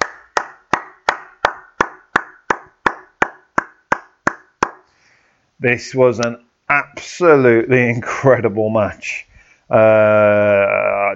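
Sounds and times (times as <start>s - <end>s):
hand clapping for emphasis: 0.0s - 4.8s
speech: 5.6s - 11.1s.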